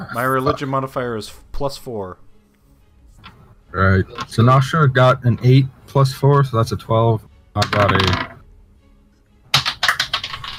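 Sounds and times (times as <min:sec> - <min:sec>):
speech: 0:00.0 - 0:02.2, 0:03.7 - 0:08.3
dice clattering onto the floor during a tabletop roleplaying game: 0:07.6 - 0:08.4, 0:09.5 - 0:10.5.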